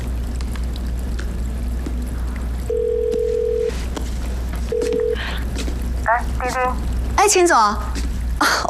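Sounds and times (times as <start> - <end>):
low hum: 0.0 - 8.6
mobile phone call ringback tone: 2.7 - 3.7, 4.7 - 5.2
speech: 6.4 - 8.6.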